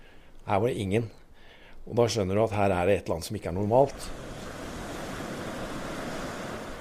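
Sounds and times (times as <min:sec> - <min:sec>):
speech: 0:00.5 - 0:01.2, 0:01.8 - 0:04.2
heavy surf with waves two to three metres high at sea off the skerries: 0:03.7 - 0:06.7
strong wind buffeting the microphone: 0:03.9 - 0:06.7.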